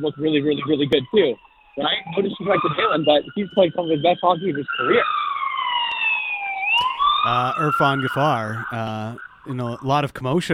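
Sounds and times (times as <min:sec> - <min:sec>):
speech: 0:00.0 - 0:05.2, 0:07.2 - 0:10.5
emergency siren wailing in downtown Vancouver: 0:00.0 - 0:10.0.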